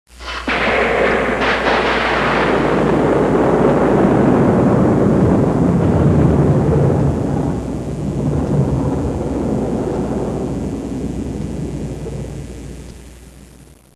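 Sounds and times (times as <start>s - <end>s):
lightning crack: 0.1s - 13.7s.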